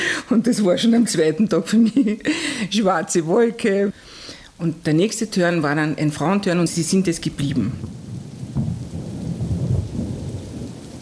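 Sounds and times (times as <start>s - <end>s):
steady rain over a bay: 0.0s - 11.0s
speech: 0.3s - 8.0s
thunder rumbling from a heavy thunderstorm over a bay: 6.1s - 11.0s.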